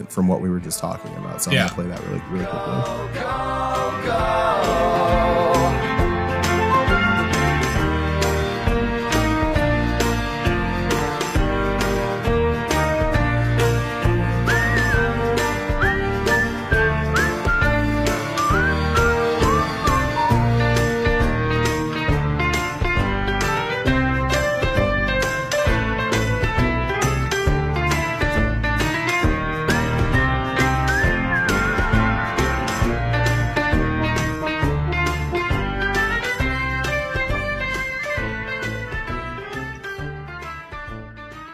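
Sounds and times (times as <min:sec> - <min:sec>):
speech: 0:00.0 - 0:05.9
bright upbeat instrumental outro tune with a steady beat: 0:00.0 - 0:41.5
whistled melody: 0:06.3 - 0:08.6, 0:14.2 - 0:21.7, 0:29.6 - 0:33.8, 0:35.5 - 0:39.0.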